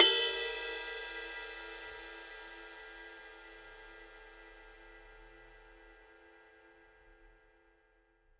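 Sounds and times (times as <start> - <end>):
20-inch forged bronze ride cymbal bell: 0.0 - 2.6.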